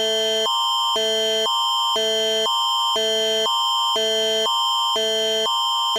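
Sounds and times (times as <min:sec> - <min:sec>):
Amber Alert emergency phone alert tone: 0:00.0 - 0:05.9.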